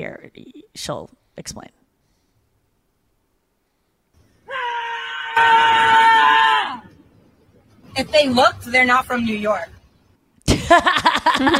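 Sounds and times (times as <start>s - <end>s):
speech: 0.0s - 1.8s, 5.4s - 6.0s, 8.0s - 9.8s, 10.7s - 11.5s
woman screaming on a city street: 4.5s - 6.9s
laughter: 10.5s - 11.5s.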